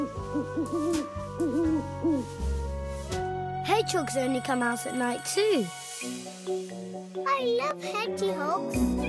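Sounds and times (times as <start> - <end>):
owl hooting: 0.0 - 2.6
speech: 3.8 - 9.0.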